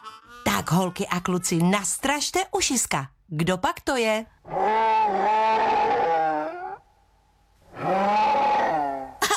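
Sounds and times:
speech: 0.6s - 5.4s
bear growling with deep rumbling roar: 4.4s - 6.9s, 7.7s - 9.2s.

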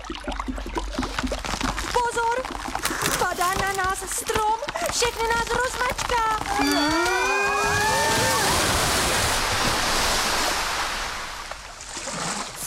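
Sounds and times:
rushing water: 0.0s - 12.6s
speech: 0.1s - 1.1s, 3.3s - 8.3s
brief high-pitched cries: 6.5s - 8.7s
crashing waves: 6.7s - 12.6s.

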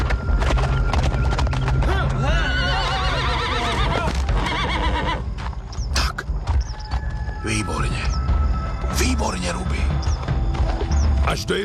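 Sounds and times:
horse hooves clopping: 0.0s - 11.6s
horse neighing: 1.8s - 5.3s.

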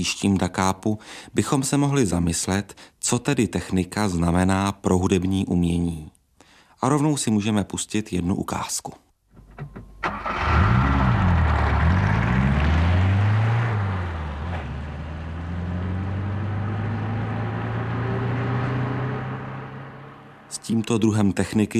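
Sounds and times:
speech: 0.0s - 6.2s, 6.8s - 9.0s, 20.7s - 21.7s
car engine cranking, revving and idling: 9.4s - 20.5s.

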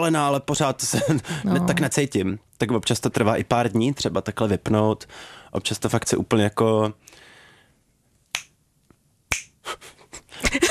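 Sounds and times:
speech: 0.0s - 7.3s
crisp finger snaps in a quiet room: 8.3s - 9.6s.

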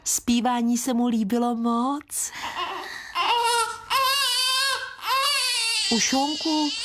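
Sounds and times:
speech: 0.1s - 2.6s, 5.9s - 6.8s
baby crying in wailing sobbing bursts: 2.4s - 6.8s.

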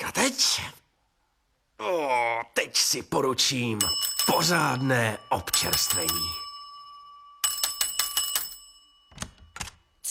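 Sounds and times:
speech: 0.2s - 0.8s, 1.8s - 6.4s
small bell ringing in a rattling burst: 3.8s - 9.6s.

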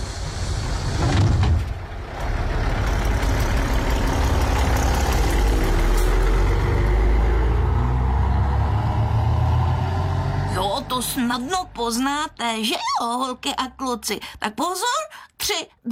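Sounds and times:
bus road noise: 0.0s - 12.6s
bus engine rumble while driving: 0.0s - 12.7s
speech: 11.0s - 15.9s.

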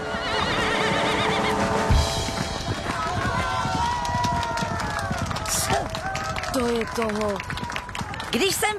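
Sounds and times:
horse neighing: 0.0s - 1.6s
hoofbeats: 0.0s - 5.7s
speech: 6.6s - 7.6s, 8.3s - 8.7s.

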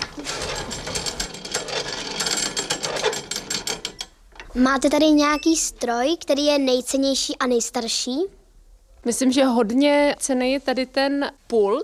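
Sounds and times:
antique wooden washing machine being worked by hand: 0.0s - 4.1s
speech: 4.6s - 8.4s, 9.0s - 11.8s.

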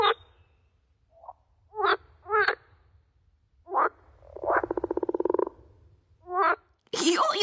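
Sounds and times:
frog croaking: 0.0s - 0.3s, 1.2s - 2.7s, 3.7s - 6.7s.

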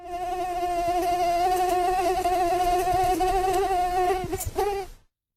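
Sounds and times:
mosquito buzzing: 0.0s - 5.0s.

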